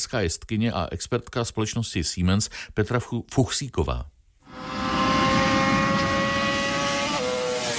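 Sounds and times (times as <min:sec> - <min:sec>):
speech: 0:00.0 - 0:04.2
Honda racing motorcycle engine high-revving on a race circuit: 0:04.4 - 0:07.7.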